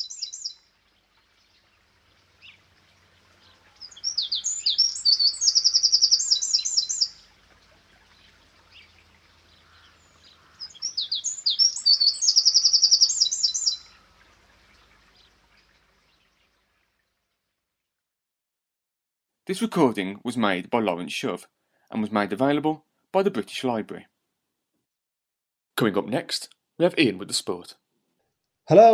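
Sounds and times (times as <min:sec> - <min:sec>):
wren song: 0:00.0 - 0:16.6
speech: 0:19.5 - 0:24.1, 0:25.8 - 0:27.8, 0:28.7 - 0:28.9.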